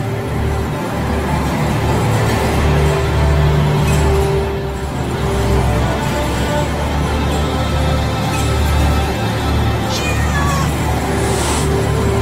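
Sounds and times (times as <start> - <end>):
loud dense steady wash: 0.0 - 12.2
cat meowing near a bed: 9.9 - 10.8.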